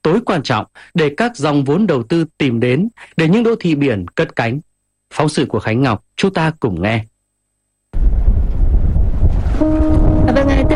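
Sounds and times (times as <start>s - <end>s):
speech: 0.0s - 7.1s, 9.6s - 10.7s
wind buffeting the microphone on the deck of a navy ship at sea: 8.0s - 10.7s.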